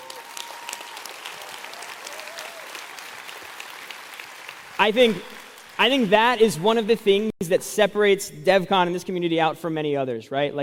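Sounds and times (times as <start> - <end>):
audience applause: 0.0 - 6.6
speech: 4.8 - 10.6.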